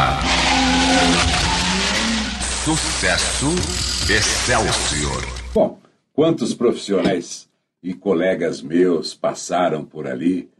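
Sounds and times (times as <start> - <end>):
Formula 1 race car tires skidding and squealing: 0.0 - 3.5
roaring Formula 1 race car engine: 0.0 - 5.6
speech: 2.7 - 10.5.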